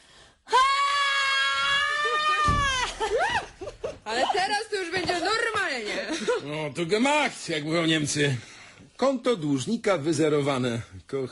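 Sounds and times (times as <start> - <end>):
woman screaming: 0.5 - 3.5
speech: 4.1 - 11.3.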